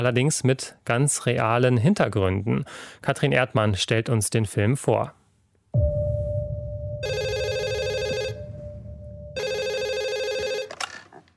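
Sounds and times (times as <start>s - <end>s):
speech: 0.0s - 6.0s
steady underlying tone: 5.8s - 10.1s
telephone ringing in loud electronic bursts: 7.0s - 11.0s.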